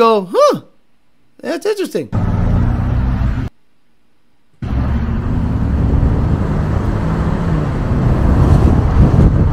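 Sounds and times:
speech: 0.0s - 0.7s, 1.4s - 2.2s
twin-turbo straight-six pickup truck accelerating with deep engine roar: 2.2s - 3.5s, 4.6s - 9.5s
heavy wind buffeting: 5.1s - 9.5s.

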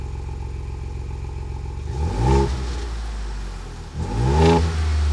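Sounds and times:
Ford Bronco engine idling and revving with deep exhaust rumble: 1.8s - 5.1s.

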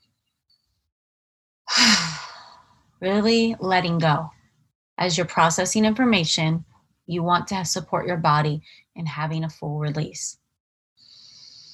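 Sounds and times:
speech: 3.0s - 4.4s, 5.0s - 10.4s
deep sigh-like exhale during a guided breathing meditation: 11.0s - 11.7s.

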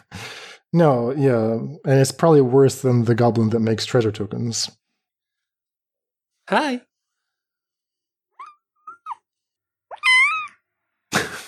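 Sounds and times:
speech: 0.7s - 4.8s, 6.5s - 6.9s
kitten chirping: 8.3s - 9.3s, 9.9s - 10.6s
kitten meowing: 9.9s - 10.6s.

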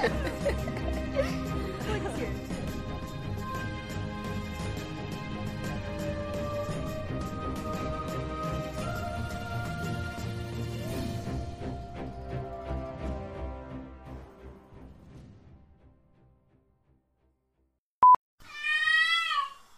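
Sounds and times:
laughter: 0.0s - 2.5s
music: 0.0s - 17.8s
cat meowing loudly: 18.4s - 19.6s.

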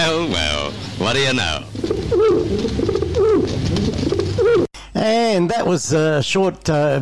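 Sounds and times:
speech: 0.1s - 3.6s, 4.5s - 7.0s
courier pigeon cooing: 1.7s - 4.7s.

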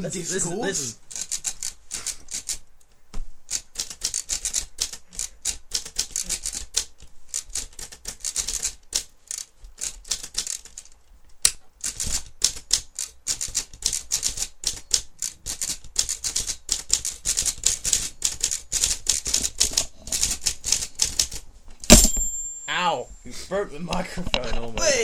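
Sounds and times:
speech: 0.0s - 1.1s, 23.8s - 25.0s
typewriter keystrokes clattering in rhythmic bursts, played like an instrument: 3.5s - 10.9s, 11.8s - 22.5s
typewriter carriage bell ding: 21.9s - 22.9s.

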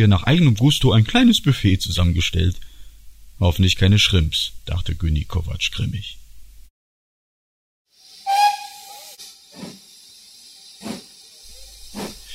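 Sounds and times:
speech: 0.0s - 2.7s, 3.4s - 6.2s
1942 steam locomotive hissing behind an engine shed: 7.9s - 12.3s
whistle-like tone of a steam locomotive: 8.2s - 9.2s.

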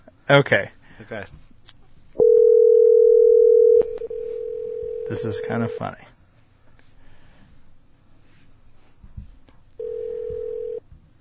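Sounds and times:
speech: 0.3s - 1.4s, 5.1s - 6.1s
telephone dial tone as a call is placed: 2.2s - 5.8s, 9.8s - 10.8s.

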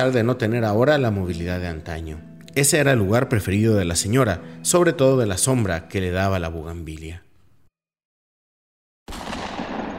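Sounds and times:
speech: 0.0s - 7.3s
gunshot: 9.1s - 9.9s.

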